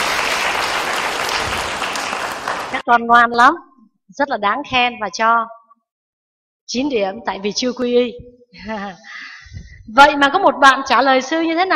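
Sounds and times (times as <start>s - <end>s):
audience applause for a child: 0.0s - 2.8s
speech: 2.9s - 5.6s, 6.7s - 11.7s.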